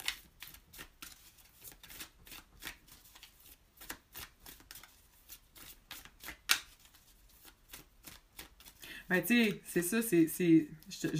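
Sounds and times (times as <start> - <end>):
cards being shuffled and drawn during a card reading: 0.0 - 9.6
card snap: 6.0 - 6.8
speech: 9.1 - 11.1.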